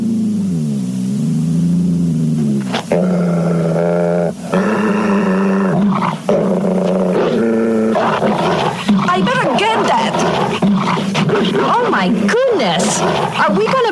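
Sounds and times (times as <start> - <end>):
wolf dog growling and snarling at a rat: 0.0 - 13.9.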